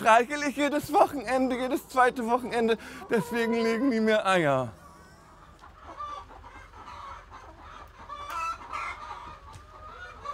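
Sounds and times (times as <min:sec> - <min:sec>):
speech: 0:00.0 - 0:04.8
chickens clucking: 0:00.0 - 0:10.3
chicken squawks: 0:02.8 - 0:10.3.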